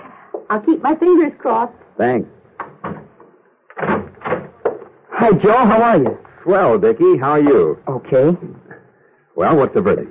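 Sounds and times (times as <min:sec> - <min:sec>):
speech: 0:00.5 - 0:02.4, 0:05.2 - 0:08.6, 0:09.4 - 0:10.0
side door opening with a soft rattle: 0:02.6 - 0:03.1, 0:03.8 - 0:04.8
side door closing with solid clunks: 0:02.6 - 0:04.9.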